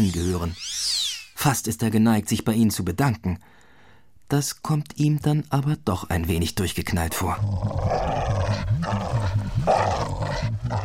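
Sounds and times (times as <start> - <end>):
speech: 0.0 - 0.8, 1.4 - 3.6, 4.3 - 8.1
free-roaming dog growling low: 7.1 - 10.8.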